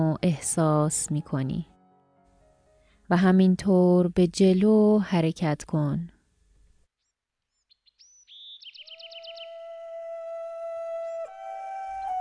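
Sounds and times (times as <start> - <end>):
speech: 0.2 - 1.7, 3.1 - 6.2
birds singing in trees: 7.5 - 10.0.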